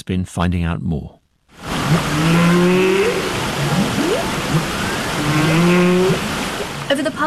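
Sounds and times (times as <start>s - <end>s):
speech: 0.1s - 1.2s, 1.9s - 6.2s, 6.9s - 7.2s
steady hiss of underwater noise: 1.6s - 6.9s
humpback whale song: 1.6s - 7.0s.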